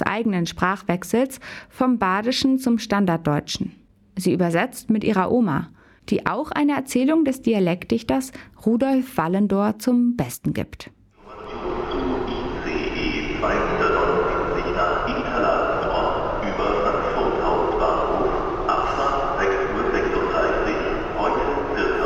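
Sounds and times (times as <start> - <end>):
speech: 0.2 - 11.0
faint murmuring voices: 11.2 - 22.0
train rolling along rails with rumble and hum: 11.2 - 22.0.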